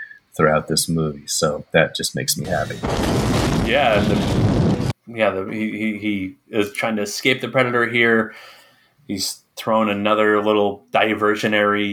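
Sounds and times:
speech: 0.4 - 11.9
loud spark-heavy jungle explosion with low rumble: 2.4 - 5.0
dense crackling explosion debris: 2.5 - 5.0.

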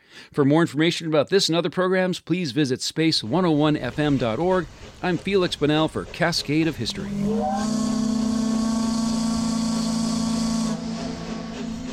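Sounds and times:
speech: 0.3 - 8.0
steam hissing from steamer's whistle: 3.6 - 11.9
steamer's steam whistle blast: 6.7 - 11.9.

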